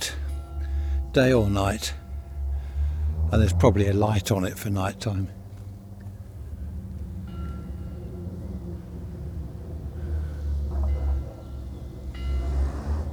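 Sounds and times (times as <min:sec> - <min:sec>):
car engine droning and revving as the car races about: 0:00.0 - 0:13.1
faint whining tones: 0:00.0 - 0:13.1
speech: 0:01.2 - 0:02.0, 0:03.3 - 0:05.4.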